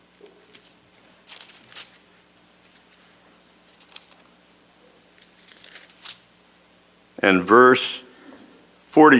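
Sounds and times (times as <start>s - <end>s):
faint steady hum: 0.0s - 9.1s
book pages being turned: 0.2s - 6.3s
speech: 7.2s - 8.0s, 9.0s - 9.1s.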